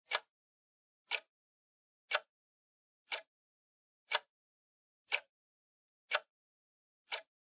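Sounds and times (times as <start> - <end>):
clock second hand ticking: 1.1 - 1.3, 2.1 - 2.3, 3.1 - 3.3, 4.1 - 4.3, 5.1 - 5.3, 7.1 - 7.3.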